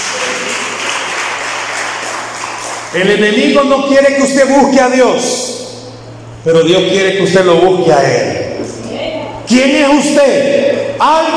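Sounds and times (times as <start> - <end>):
church congregation applauding at an afternoon Spanish-language service: 0.0 - 3.0
speech: 2.9 - 5.6, 6.4 - 8.8, 9.5 - 11.3.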